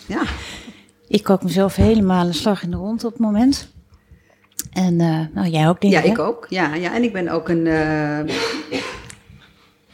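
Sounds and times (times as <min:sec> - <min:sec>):
speech: 0:00.1 - 0:00.5, 0:01.1 - 0:03.8, 0:04.8 - 0:08.8
coughs: 0:08.2 - 0:09.2.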